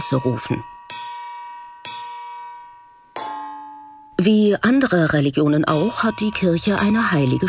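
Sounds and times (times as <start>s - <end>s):
speech: 0.0s - 0.8s, 4.2s - 7.4s
wooden spoon striking a metal colander: 0.0s - 4.2s, 5.6s - 7.4s.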